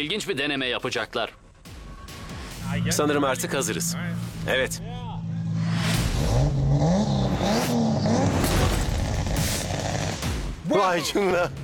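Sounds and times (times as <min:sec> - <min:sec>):
speech: 0:00.0 - 0:01.4, 0:02.7 - 0:05.1, 0:10.7 - 0:11.6
car exhaust blasts: 0:02.5 - 0:10.6
turbocharged car engine revving hard: 0:02.5 - 0:10.6.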